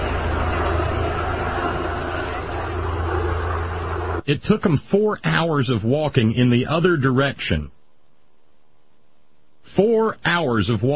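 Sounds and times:
helicopters flying overhead: 0.0 - 4.3
speech: 4.3 - 7.8, 9.7 - 10.9.

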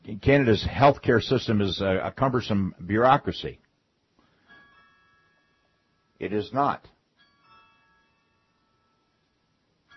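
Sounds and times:
speech: 0.1 - 3.6, 6.2 - 7.0
doorbell chiming: 4.4 - 9.9.

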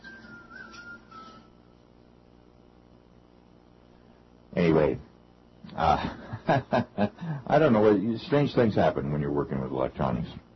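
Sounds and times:
thin wavering whistle: 0.0 - 1.7
speech: 4.6 - 5.1, 5.8 - 10.5
laughter: 5.8 - 7.4.

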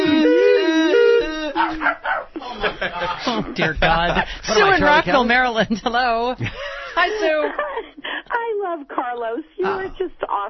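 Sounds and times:
voice imitating a distant dog howling like a European ambulance siren: 0.0 - 2.2
laughter: 1.0 - 8.4
speech: 2.9 - 7.8, 8.7 - 10.4.

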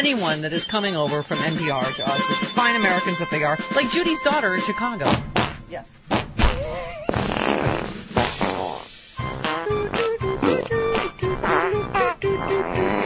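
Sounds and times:
speech: 0.0 - 6.1
buzzy fart noises: 5.0 - 13.0.

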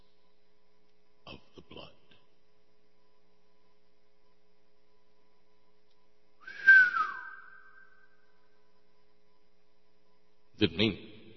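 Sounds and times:
bright whistled note with long reverb tail: 6.4 - 8.1
speech: 10.6 - 11.1.

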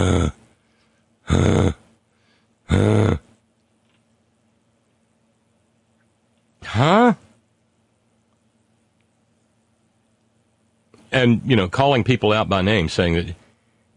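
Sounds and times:
speech: 0.0 - 0.4, 1.3 - 1.6, 11.2 - 13.4
heavy breathing with gasps and a groaning exhale: 0.0 - 3.3.

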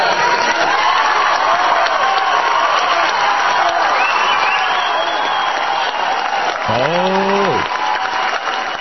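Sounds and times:
large crowd clapping: 0.1 - 8.7
person whooping: 6.5 - 7.8.

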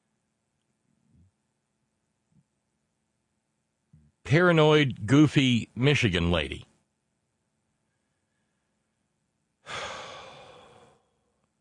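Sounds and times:
speech: 4.3 - 6.7
deep breath in through the nose, out through the mouth: 9.6 - 11.5.

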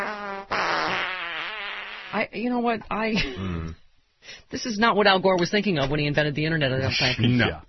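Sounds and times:
loud fart sound effect: 0.0 - 2.2
speech: 2.2 - 7.6.

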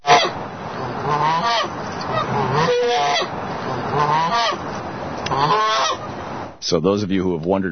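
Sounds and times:
goose honking at people on deck: 0.0 - 6.1
speech: 6.7 - 7.6.

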